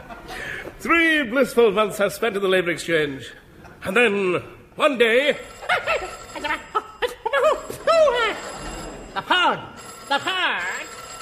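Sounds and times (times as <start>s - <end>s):
people laughing: 0.0s - 0.7s, 5.6s - 10.7s
speech: 0.8s - 6.7s
telephone ringing in short warbling bursts: 5.3s - 11.2s.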